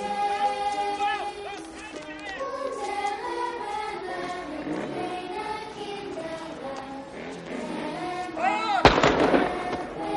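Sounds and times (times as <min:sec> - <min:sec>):
many raised wailing voices: 0:00.0 - 0:05.4, 0:07.0 - 0:10.1
musket rifle gunshot: 0:08.8 - 0:10.1.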